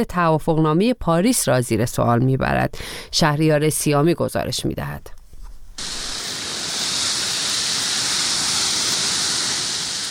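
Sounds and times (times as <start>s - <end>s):
speech: 0.0s - 5.2s
dry grass burning in a wildfire: 5.8s - 10.0s.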